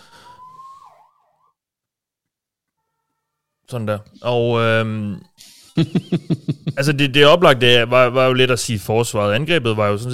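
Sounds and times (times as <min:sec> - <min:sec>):
ambulance siren wailing outside: 0:00.0 - 0:01.6
speech: 0:03.7 - 0:10.1
laughter: 0:05.7 - 0:07.1.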